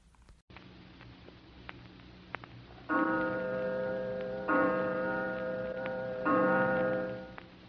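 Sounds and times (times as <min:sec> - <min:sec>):
clock ticking: 0:02.9 - 0:07.5.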